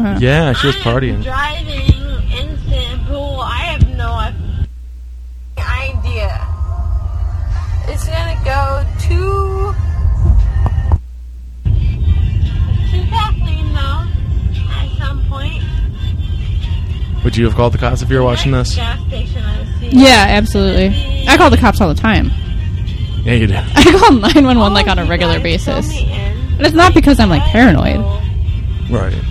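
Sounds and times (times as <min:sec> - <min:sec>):
music with singing voice from a car stereo: 0:00.0 - 0:04.7, 0:06.6 - 0:11.0, 0:11.7 - 0:29.3
low engine rumble of a moving car: 0:00.0 - 0:29.3
road hum: 0:00.0 - 0:29.3
speech: 0:00.1 - 0:01.8, 0:17.2 - 0:22.4, 0:23.2 - 0:28.2, 0:28.9 - 0:29.3.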